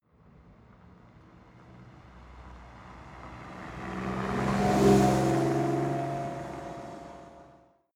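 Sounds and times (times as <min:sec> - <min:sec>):
car driving by at medium speed: 0:02.2 - 0:07.7.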